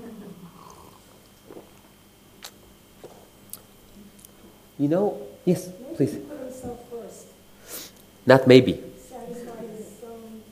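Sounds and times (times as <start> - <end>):
sipping and swallowing a drink: 0.5 - 4.4
speech: 4.8 - 6.8, 8.2 - 8.9.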